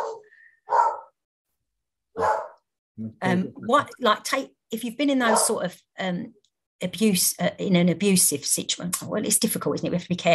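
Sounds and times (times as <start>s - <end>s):
dog barking: 0.0s - 1.2s, 2.2s - 2.6s, 5.2s - 5.6s
speech: 3.0s - 10.3s.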